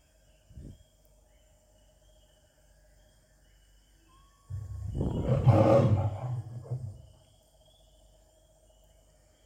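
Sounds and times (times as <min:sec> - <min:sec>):
faint insects chirping: 0:00.0 - 0:09.4
lion roaring loudly: 0:04.5 - 0:07.2.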